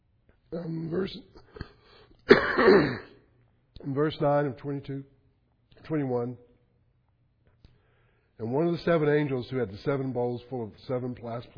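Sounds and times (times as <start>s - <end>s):
speech: 0.5s - 1.5s, 2.3s - 3.1s, 3.8s - 5.1s, 5.8s - 6.4s, 8.4s - 11.5s
harsh cough-like burst: 1.4s - 3.3s
person clearing throat: 2.3s - 3.2s.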